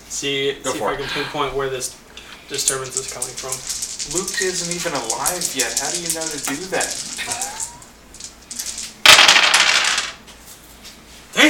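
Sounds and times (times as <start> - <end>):
speech: 0.1 - 7.6
dice clattering and tumbling across a hard table: 2.6 - 10.2.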